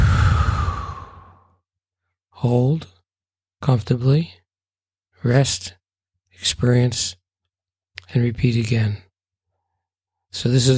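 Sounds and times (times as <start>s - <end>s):
deep slow breath out during a meditation exercise: 0.0s - 1.5s
speech: 2.4s - 3.0s, 3.6s - 4.4s, 5.2s - 5.8s, 6.4s - 7.2s, 8.1s - 9.1s, 10.3s - 10.7s.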